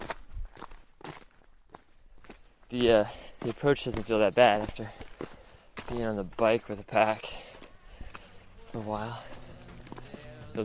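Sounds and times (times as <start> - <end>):
footsteps of people hiking with packs in sport sandals up an approach trail: 0.0 - 10.6
speech: 2.7 - 5.0, 5.9 - 7.3, 8.7 - 9.4.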